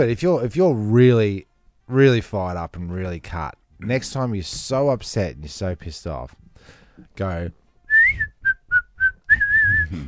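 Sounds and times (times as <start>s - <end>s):
speech: 0.0s - 8.3s, 9.7s - 10.0s
person whistling a short bright happy tune: 7.9s - 10.0s.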